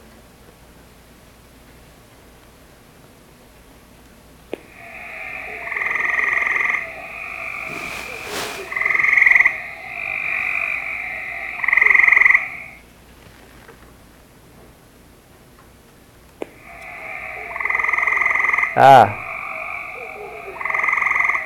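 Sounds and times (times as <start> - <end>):
gray tree frog musical trills: 4.6 - 12.8, 16.4 - 21.4
speech: 18.8 - 19.2.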